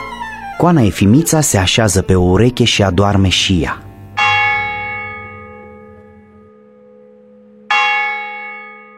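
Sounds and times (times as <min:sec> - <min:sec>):
speech: 0:00.6 - 0:03.8
church bell striking after midnight: 0:02.7 - 0:08.9.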